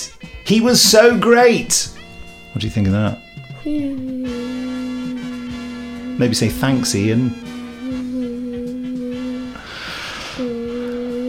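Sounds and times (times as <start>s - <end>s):
speech: 0.5s - 2.0s, 2.6s - 4.2s, 6.2s - 7.5s
man humming one low steady note to imitate hovering: 3.4s - 11.2s.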